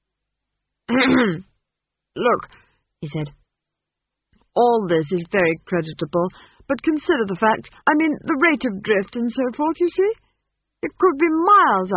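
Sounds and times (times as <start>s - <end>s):
speech: 0.9s - 1.5s, 2.2s - 3.4s, 4.6s - 10.2s, 10.8s - 11.9s
throat clearing: 0.9s - 1.5s.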